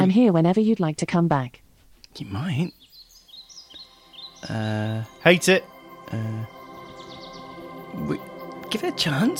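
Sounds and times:
speech: 0.0 - 2.9, 4.4 - 6.6, 8.0 - 9.3
quiet steady hush: 0.0 - 9.3
soft high birdsong chirps and twittering in a relaxation soundscape: 2.1 - 9.3.

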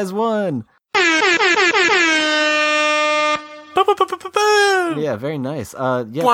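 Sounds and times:
speech: 0.0 - 2.4, 3.8 - 6.3
air horn sound effect blasts: 1.0 - 3.8.

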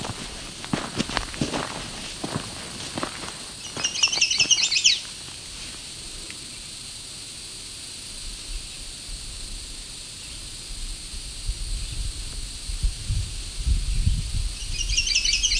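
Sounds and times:
crunchy footsteps: 0.0 - 6.0
outdoor noise: 0.0 - 15.5
bird trilling loudly from a tree on open flats: 3.6 - 5.1.

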